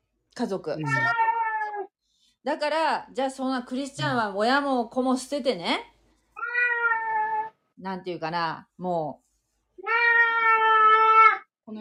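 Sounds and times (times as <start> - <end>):
speech: 0.4 - 1.2, 2.4 - 5.9, 7.8 - 9.2, 11.7 - 11.8
cat meowing: 0.8 - 1.9, 6.4 - 7.5, 9.8 - 11.5.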